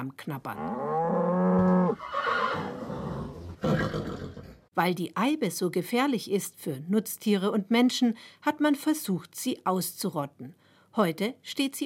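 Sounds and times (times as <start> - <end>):
speech: 0.0 - 2.2, 3.9 - 11.8
horse whinnying: 0.7 - 4.7
horse snorting: 1.2 - 4.7.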